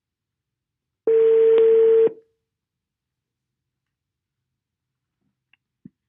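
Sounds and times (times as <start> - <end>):
steady telephone tone of a dialed call: 1.1 - 2.2.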